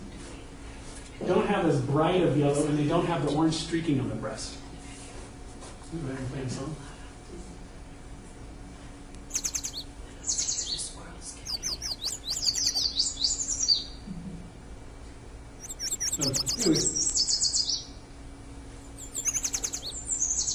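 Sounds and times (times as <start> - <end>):
faint steady hum: 0.0 - 20.5
speech: 1.2 - 4.6, 5.9 - 7.5, 16.2 - 16.9
yellow warbler song: 9.3 - 14.0, 15.6 - 17.9, 18.8 - 20.5.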